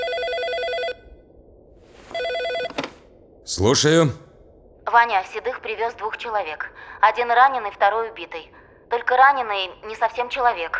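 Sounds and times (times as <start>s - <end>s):
telephone ringing in an office with a trilling electronic ring: 0.0s - 0.9s, 2.0s - 3.0s
speech: 3.5s - 4.2s, 4.9s - 10.7s.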